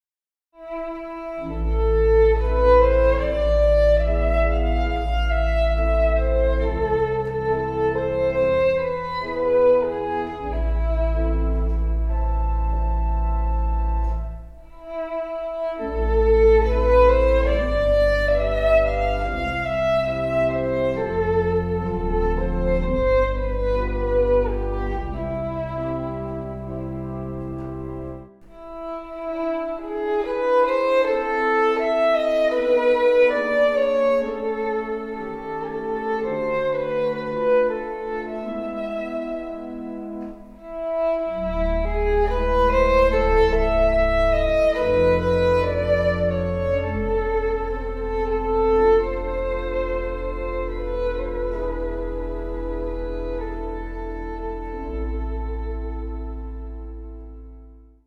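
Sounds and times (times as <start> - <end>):
violin playing: 0.6 - 58.0.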